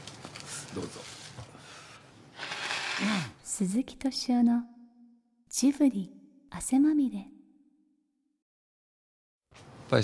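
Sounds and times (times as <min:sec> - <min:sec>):
speech: 0:00.7 - 0:01.2, 0:03.6 - 0:04.7, 0:05.6 - 0:07.4
person sniffing softly: 0:01.6 - 0:03.4
person blowing their nose, ending in a honking snort: 0:02.4 - 0:03.4.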